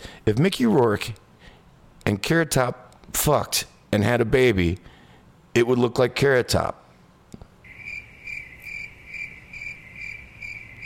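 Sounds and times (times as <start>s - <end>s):
speech: 0.3s - 1.2s, 2.1s - 4.9s, 5.6s - 6.8s
crickets chirping: 7.7s - 10.8s.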